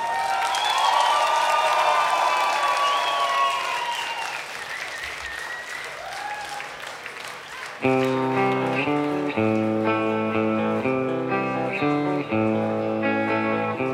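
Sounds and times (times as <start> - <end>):
crowd clapping: 0.0 - 13.9
whistles: 0.3 - 1.4, 2.5 - 6.6
music: 7.8 - 13.9.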